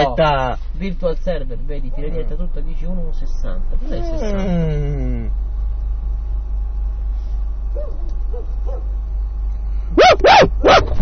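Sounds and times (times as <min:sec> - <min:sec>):
speech: 0:00.0 - 0:05.4, 0:07.8 - 0:08.9
low steady hum: 0:00.0 - 0:11.0
dog barking: 0:07.8 - 0:08.9, 0:09.9 - 0:11.0.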